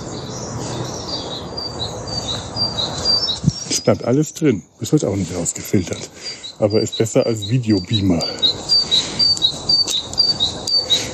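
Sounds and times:
birds chirping and whistling: 0.0s - 11.1s
speech: 3.9s - 9.0s.

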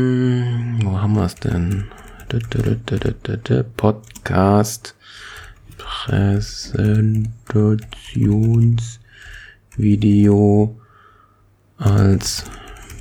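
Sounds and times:
speech: 0.0s - 9.0s, 9.8s - 10.8s, 11.8s - 12.6s
typing on a computer keyboard: 1.2s - 9.9s, 11.8s - 12.9s.

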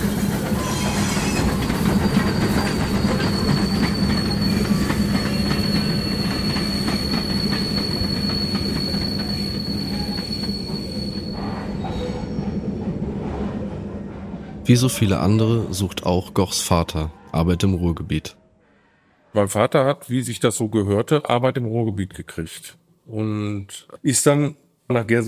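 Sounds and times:
heavy rumbling clatter of railway freight wagons rolling past: 0.0s - 9.5s
railway freight wagon wheels squealing: 0.0s - 13.6s
speech: 14.7s - 18.4s, 19.4s - 25.2s.

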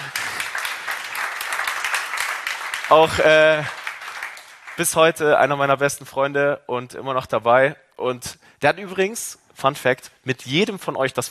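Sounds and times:
audience applause in a room: 0.0s - 5.2s
speech: 2.9s - 3.8s, 4.8s - 11.3s.

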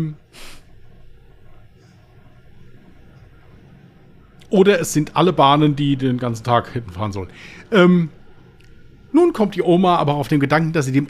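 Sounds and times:
speech: 0.0s - 0.6s, 4.5s - 8.2s, 9.1s - 11.0s
train passing by outside: 0.0s - 11.0s
short breathy hiss: 0.3s - 0.7s.

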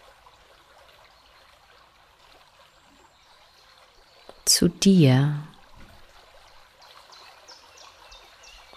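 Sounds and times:
gently splashing water flowing in a stream: 0.0s - 8.7s
speech: 4.5s - 5.5s.

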